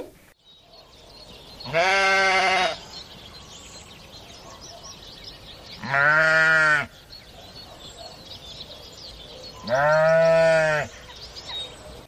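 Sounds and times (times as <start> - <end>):
chirping: 0.5 - 12.0
flock of sheep bleating: 1.6 - 2.8, 5.8 - 6.9, 9.6 - 10.9
speech: 1.7 - 2.0.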